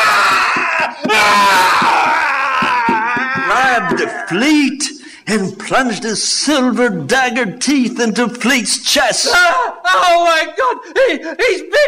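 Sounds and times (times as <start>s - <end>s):
loud sustained piercing blood-curdling scream: 0.0s - 4.3s
speech: 4.0s - 11.8s
gasp: 5.0s - 5.3s, 10.8s - 11.4s.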